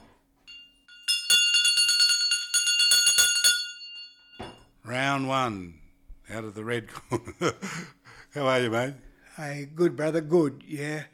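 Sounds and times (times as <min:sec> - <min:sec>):
boxing ring bell clanging: 0:00.4 - 0:04.8
speech: 0:04.9 - 0:11.1.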